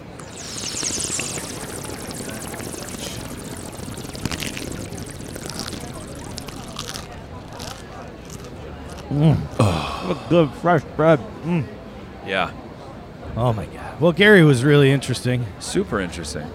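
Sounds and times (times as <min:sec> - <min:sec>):
water pouring: 0:00.0 - 0:09.6
speech: 0:09.1 - 0:12.6, 0:13.4 - 0:16.5.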